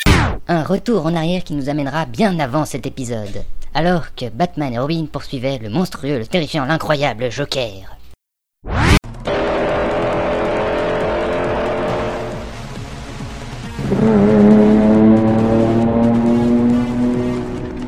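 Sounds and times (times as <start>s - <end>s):
speech: 0.5s - 8.0s, 13.9s - 14.4s
car engine revving: 8.8s - 17.8s
car tires squealing: 9.0s - 17.8s.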